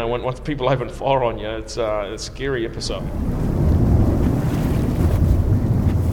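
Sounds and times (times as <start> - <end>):
speech: 0.0 - 3.6
wind buffeting against the microphone: 2.6 - 6.1
boat moving on open water: 2.8 - 6.1.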